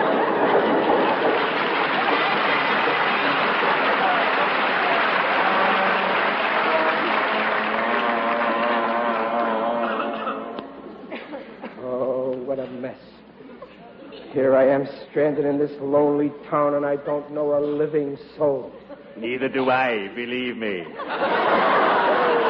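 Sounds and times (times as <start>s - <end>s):
departing train roaring and hissing: 0.0s - 11.0s
laughter: 0.0s - 12.1s, 18.6s - 20.1s, 20.7s - 22.4s
speech: 14.4s - 21.7s.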